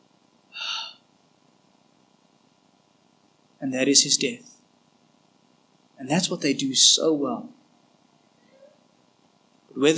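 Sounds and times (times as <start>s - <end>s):
final breath escaping the lungs of a speared man: 0.6s - 1.0s
speech: 3.6s - 4.5s, 6.1s - 7.6s, 9.8s - 9.9s.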